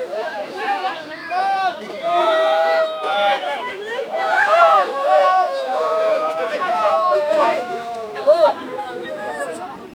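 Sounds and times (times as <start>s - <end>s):
crowd shouting in surprise in a marketplace: 0.0s - 9.6s.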